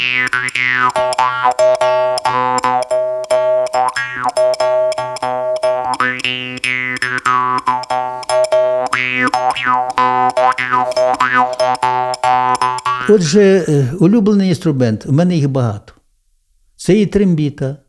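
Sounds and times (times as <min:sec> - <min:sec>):
speech: 0:00.0 - 0:01.8, 0:13.1 - 0:16.0, 0:16.8 - 0:17.8
jaw harp drymba twanging in a steady rhythmic pattern: 0:00.0 - 0:13.9.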